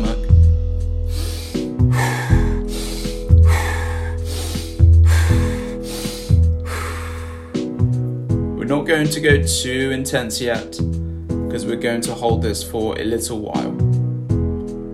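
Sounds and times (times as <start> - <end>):
steady tonal music: 0.0 - 14.9
forceful rhythmic breathing, inhaling through nose, exhaling through mouth: 0.8 - 8.1
speech: 8.9 - 13.8.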